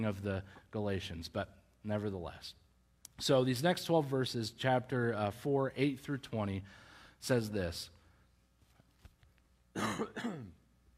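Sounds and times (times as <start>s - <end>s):
speech: 0.0s - 2.6s, 3.2s - 8.0s, 9.8s - 10.6s
coughing and throat clearing: 9.8s - 10.6s.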